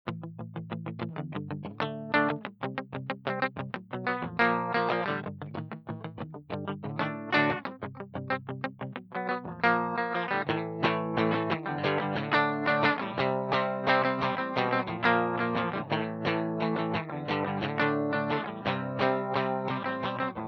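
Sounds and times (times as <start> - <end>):
dry rock guitar riff: 0.1 - 20.4.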